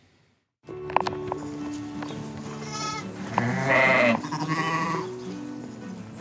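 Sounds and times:
sheep bleating: 2.5s - 5.2s.

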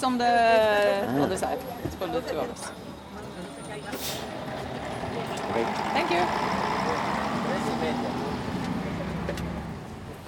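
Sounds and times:
speech: 0.0s - 3.0s, 5.2s - 7.1s, 7.8s - 8.3s
bus engine droning inside a moving bus in Spain: 1.6s - 10.2s.

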